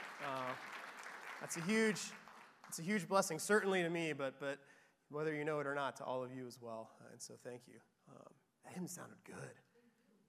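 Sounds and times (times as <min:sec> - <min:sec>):
crowd clapping in a church: 0:00.0 - 0:04.0
speech: 0:00.2 - 0:00.8, 0:01.4 - 0:09.7.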